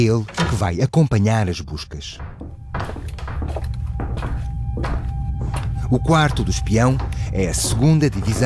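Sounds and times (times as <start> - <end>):
house door being opened by the occupant: 0.0 - 0.8, 1.7 - 8.4
speech: 0.0 - 2.9, 5.9 - 8.4
steady low hum: 1.8 - 8.4
heavy knocks on the door of a house in Lisbon: 2.2 - 5.7, 6.3 - 8.4.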